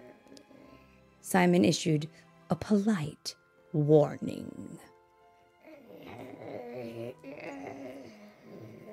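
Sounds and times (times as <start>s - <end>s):
speech: 1.2s - 4.9s
person imitating a throaty dog growl: 5.7s - 8.9s.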